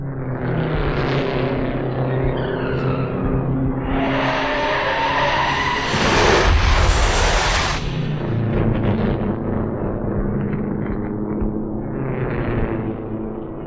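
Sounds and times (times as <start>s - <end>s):
race car engine noise: 0.0s - 13.6s
race car tires squealing and skidding on a race track: 0.6s - 8.1s
race car crash: 4.4s - 8.5s.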